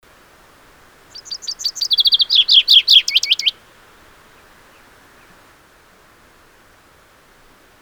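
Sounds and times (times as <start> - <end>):
common chaffinch singing: 0.0 - 5.5.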